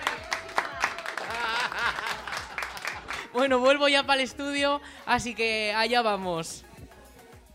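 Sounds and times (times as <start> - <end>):
laughter: 0.0 - 3.3
voices calling out and cheering: 0.0 - 3.4
crowd applauding: 0.0 - 3.5
speech: 3.4 - 6.7.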